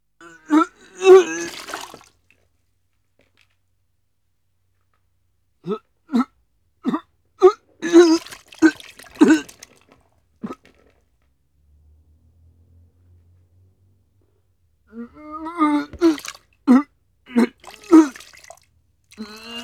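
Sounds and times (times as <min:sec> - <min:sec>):
person vomiting: 0:00.2 - 0:02.0, 0:05.6 - 0:09.7, 0:14.9 - 0:18.5, 0:19.2 - 0:19.6.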